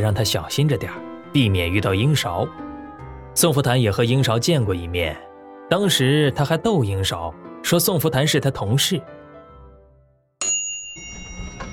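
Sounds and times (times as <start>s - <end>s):
speech: 0.0s - 2.7s, 3.4s - 9.2s
apartment doorbell ringing with a bright high electronic chime: 10.4s - 11.7s.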